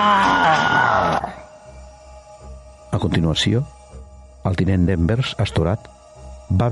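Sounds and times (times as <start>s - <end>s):
harsh strained scream of rage and terror in a gaming room: 0.0s - 1.5s
speech: 3.0s - 3.8s, 4.4s - 6.6s.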